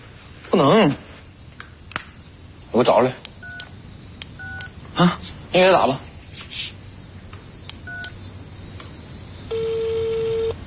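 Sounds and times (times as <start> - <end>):
faint hiss: 0.0 - 10.6
speech: 0.5 - 1.1, 2.8 - 3.3, 5.0 - 6.6
telephone keypad beeps: 3.4 - 3.7, 4.4 - 4.7, 7.9 - 8.2, 9.5 - 10.6.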